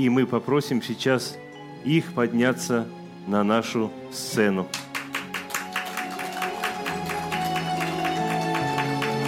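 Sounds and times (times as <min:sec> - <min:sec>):
speech: 0:00.0 - 0:04.9
sustained music at a winter show: 0:00.0 - 0:09.2
audience clapping in a rhythmic beat at a winter show: 0:04.6 - 0:09.2.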